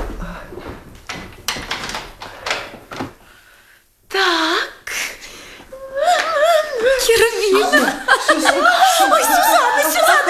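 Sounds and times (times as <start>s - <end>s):
clunks and rattles from a door handle and latch: 1.1s - 3.1s
laughter: 6.0s - 10.2s.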